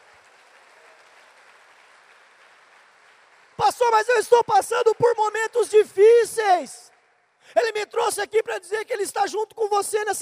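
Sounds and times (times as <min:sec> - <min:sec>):
audience applauding: 0:00.0 - 0:08.1
speech: 0:03.7 - 0:06.8, 0:07.6 - 0:10.2.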